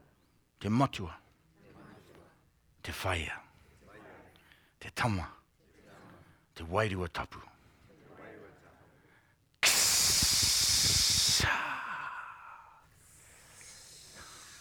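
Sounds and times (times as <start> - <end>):
speech: 0.6 - 1.2, 2.8 - 3.4, 4.8 - 5.4, 6.6 - 7.6
long forceful exhaled breath at a community gathering: 9.6 - 14.5.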